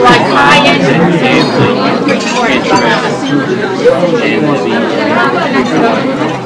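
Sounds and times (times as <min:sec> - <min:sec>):
party crowd: 0:00.0 - 0:06.4.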